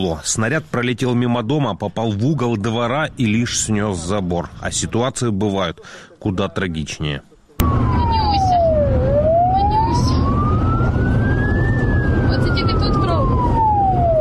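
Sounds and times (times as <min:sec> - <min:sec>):
speech: 0:00.0 - 0:08.0
ambulance siren wailing: 0:07.6 - 0:14.1
heavy rumble of engine and road noise: 0:07.6 - 0:14.1.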